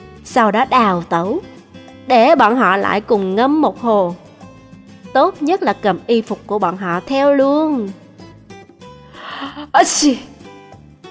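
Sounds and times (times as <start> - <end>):
speech: 0.3 - 1.5, 2.1 - 4.2, 5.1 - 8.0, 9.7 - 10.3
sneeze: 9.7 - 10.4.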